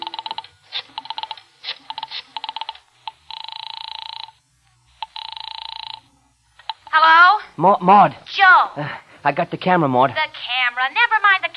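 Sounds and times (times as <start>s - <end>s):
telephone buzzing rings: 0.0s - 7.2s
speech: 7.6s - 11.5s.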